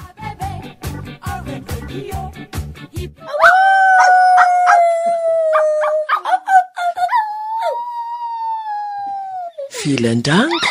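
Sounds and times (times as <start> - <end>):
speech: 2.0 - 2.6, 9.9 - 10.6
dogs howling: 3.2 - 9.6
dancing dogs barking: 5.5 - 6.4.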